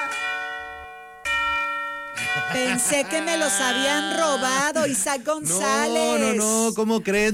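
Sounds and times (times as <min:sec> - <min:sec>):
doorbell chime ringing at a radio studio booth door: 0:00.0 - 0:04.7
laughter: 0:02.2 - 0:06.4
speech: 0:02.4 - 0:07.3.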